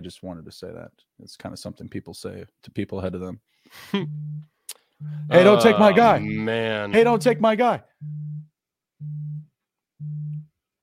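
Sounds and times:
speech: 0.0s - 8.3s
phone vibrating: 4.0s - 6.4s, 8.0s - 10.6s.

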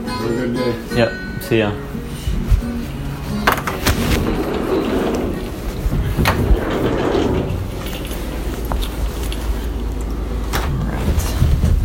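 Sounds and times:
speech: 0.2s - 2.0s
faint movement: 2.0s - 11.5s
door opening and shutting: 3.4s - 9.2s
steady rumble: 3.9s - 11.8s.

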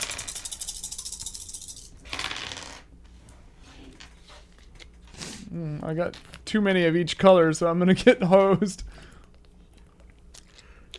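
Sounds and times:
dice rattling in a cup or hand: 0.0s - 2.8s
speech: 5.5s - 9.0s.

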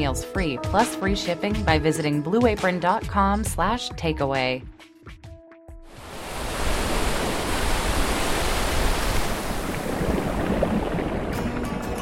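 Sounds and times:
speech: 0.0s - 4.8s
ocean surf waves breaking on the shore: 5.9s - 12.0s.

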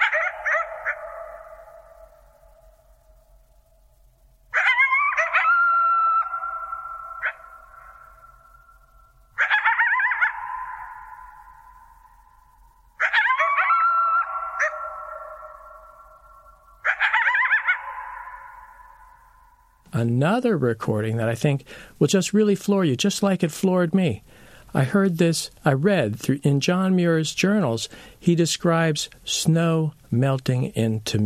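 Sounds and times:
coyotes howling and yipping in a group chorus: 0.0s - 3.1s, 4.5s - 19.8s
speech: 20.0s - 31.2s.

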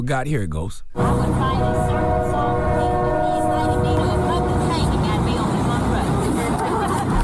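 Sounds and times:
speech: 0.0s - 2.4s
sustained horn-like tones: 1.0s - 6.4s
train rumbling past: 1.0s - 7.2s
laughter: 5.8s - 7.2s.

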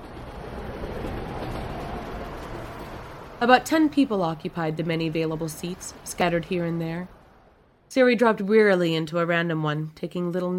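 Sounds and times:
train arriving at a station: 0.0s - 7.7s
speech: 3.4s - 7.2s, 7.9s - 10.5s.

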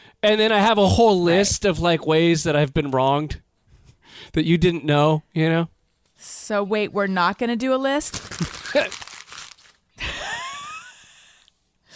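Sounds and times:
speech: 0.2s - 3.4s, 4.1s - 9.0s
sheet of paper being crumpled and thrown away: 7.9s - 9.9s.

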